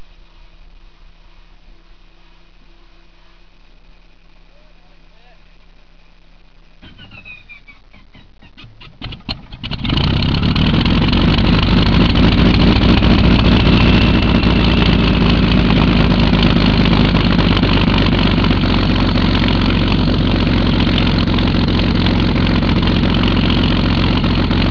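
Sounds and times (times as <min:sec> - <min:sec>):
Bf 109 aircraft engine starting: 0:06.8 - 0:24.6.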